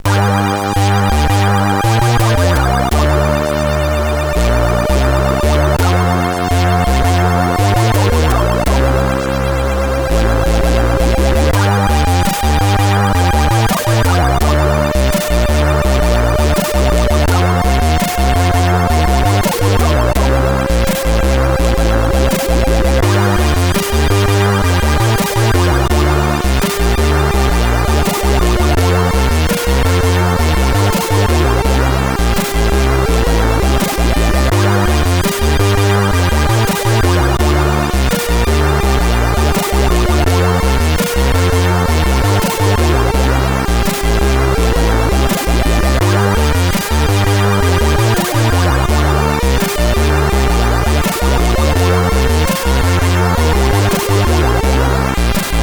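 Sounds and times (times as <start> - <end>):
SID chip chiptune music: 0.0 - 55.6.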